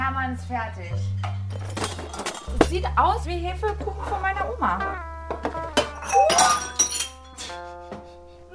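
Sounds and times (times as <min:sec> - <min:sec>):
speech: 0:00.1 - 0:05.4
broken pieces of glass or crockery clinking and settling: 0:01.3 - 0:02.6, 0:05.8 - 0:07.4
glass or crockery shattering: 0:01.5 - 0:02.6, 0:05.8 - 0:07.4.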